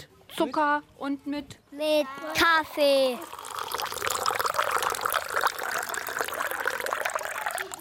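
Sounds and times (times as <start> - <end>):
speech: 0.0 - 3.4
water pumped through a hose into cups: 3.3 - 7.7.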